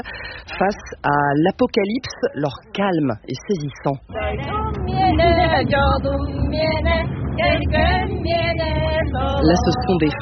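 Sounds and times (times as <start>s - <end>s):
speech: 0.0s - 10.2s
truck engine rumbling: 0.0s - 10.2s
group of women singing together in the back of a truck: 4.1s - 10.2s.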